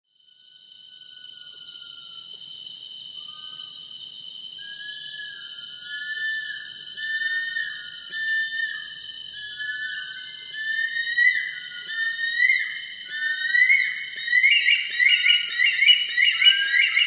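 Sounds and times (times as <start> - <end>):
Bush stone-curlew Burhinus grallarius wailing call: 4.6 - 17.0.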